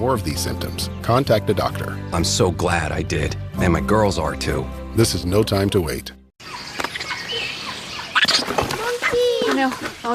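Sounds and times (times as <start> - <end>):
speech: 0.0 - 6.2, 9.6 - 10.1
monkey chattering in high-pitched squeaks and chirps: 6.6 - 9.2.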